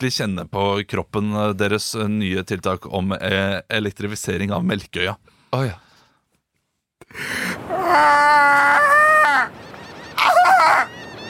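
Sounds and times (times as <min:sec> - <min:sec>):
speech: 0:00.0 - 0:05.9, 0:07.1 - 0:09.6
seagull calling: 0:07.6 - 0:11.2.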